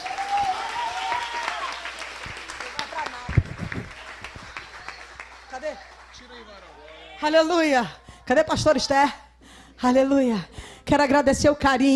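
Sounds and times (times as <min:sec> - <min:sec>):
large group clapping at a worship service: 0:00.0 - 0:07.2
speech: 0:07.2 - 0:09.2, 0:09.8 - 0:11.9.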